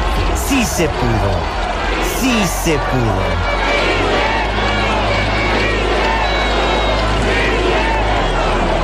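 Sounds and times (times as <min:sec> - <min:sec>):
huge crowd chanting: 0:00.0 - 0:08.8
speech: 0:00.6 - 0:03.7.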